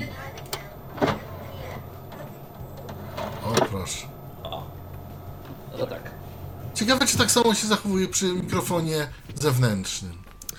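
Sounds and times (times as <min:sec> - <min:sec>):
low hum of machine noise: 0:00.0 - 0:10.5
mechanical whir and click: 0:00.2 - 0:04.0
speech: 0:03.8 - 0:04.2, 0:06.8 - 0:10.2.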